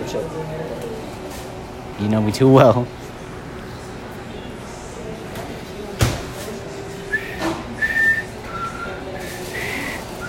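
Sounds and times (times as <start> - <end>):
speech: 0.1 - 0.8, 2.0 - 3.0
person trying to whistle: 7.1 - 10.2.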